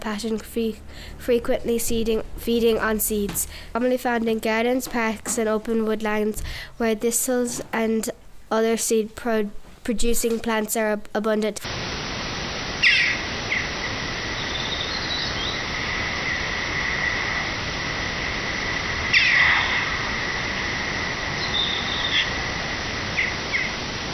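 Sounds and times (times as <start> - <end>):
speech: 0.0 - 11.9
Eurasian jackdaw harsh repeated caw calls: 11.7 - 24.1
steady high-pitched drone: 11.7 - 24.1.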